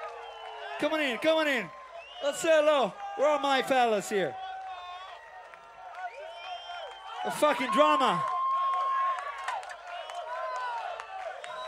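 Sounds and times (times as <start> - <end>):
big festival crowd cheering: 0.0 - 11.6
whoops and shouts from festival crowd: 0.0 - 11.6
speech: 0.8 - 4.4, 7.2 - 8.3.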